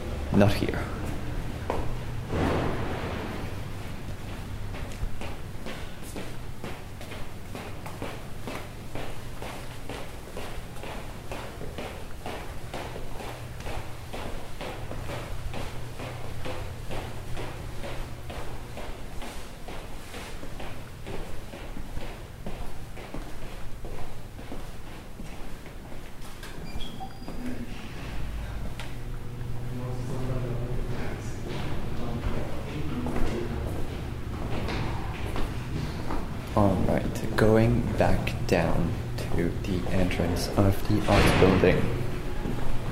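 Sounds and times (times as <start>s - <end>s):
low constant city rumble: 0.0s - 25.0s, 27.7s - 42.9s
footsteps walking through a downtown university campus: 1.0s - 26.6s, 30.9s - 42.9s.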